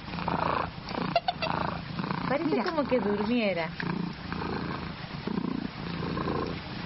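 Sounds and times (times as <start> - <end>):
domestic cat purring: 0.0 - 6.8
speech: 2.3 - 4.0.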